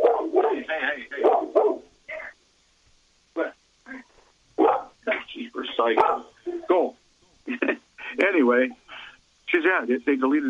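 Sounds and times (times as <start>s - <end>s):
dogs barking: 0.0s - 2.0s, 4.6s - 5.0s, 5.8s - 6.4s
speech: 5.8s - 6.9s, 8.5s - 8.8s, 9.6s - 10.4s.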